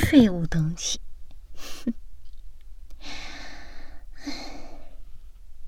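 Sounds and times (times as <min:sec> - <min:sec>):
speech: 0:00.1 - 0:01.1
heavy gulping panting breaths: 0:03.0 - 0:05.0.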